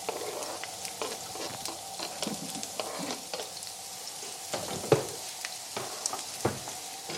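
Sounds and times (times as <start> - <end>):
stirring scrape in a wok: 0.0 - 3.5
onion sizzling in hot oil in a wok: 0.0 - 7.1.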